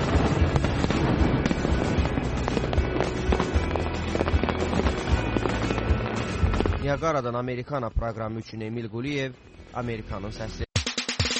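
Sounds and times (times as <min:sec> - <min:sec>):
fireworks bursting over a waterfall: 0:00.0 - 0:07.2
speech: 0:06.9 - 0:10.7.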